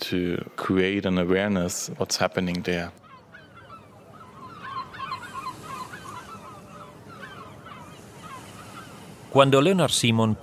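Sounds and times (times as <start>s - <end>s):
speech: 0.1s - 3.0s, 9.4s - 10.4s
seagulls calling over city streets: 2.6s - 10.4s.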